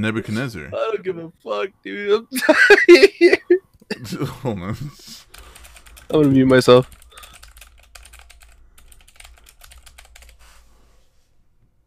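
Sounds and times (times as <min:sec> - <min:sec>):
speech: 0:00.0 - 0:05.3, 0:06.1 - 0:07.0
laughter: 0:02.4 - 0:05.1
typing on a clicky mechanical keyboard: 0:05.3 - 0:10.4.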